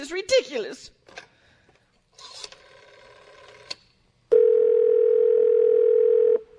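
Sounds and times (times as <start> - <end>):
telephone dial tone while placing a call: 4.3 - 6.4.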